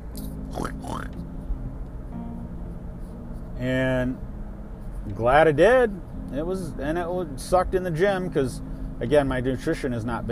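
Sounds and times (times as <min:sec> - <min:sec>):
person imitating pig oinking: 0:00.5 - 0:01.2
speech: 0:03.6 - 0:04.3, 0:05.1 - 0:10.2.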